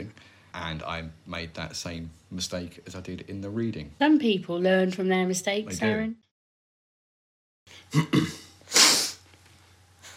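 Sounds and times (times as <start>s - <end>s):
speech: 0.5s - 6.2s, 7.7s - 8.4s
two people sniffing: 8.2s - 9.2s.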